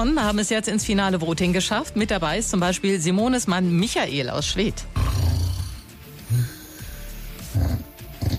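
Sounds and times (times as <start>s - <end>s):
speech: 0.0s - 5.1s
man snoring in bed: 5.0s - 8.3s.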